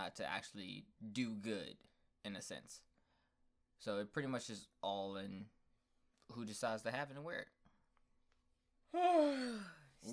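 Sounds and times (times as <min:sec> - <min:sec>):
speech: 0:00.0 - 0:02.9, 0:03.8 - 0:05.6, 0:06.3 - 0:07.6, 0:08.9 - 0:10.1
person yawning: 0:08.9 - 0:10.1.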